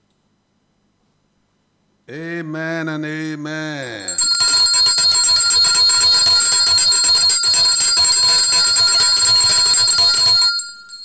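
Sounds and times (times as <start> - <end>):
speech: 2.1 - 4.2
bell ringing rapidly: 3.8 - 11.0.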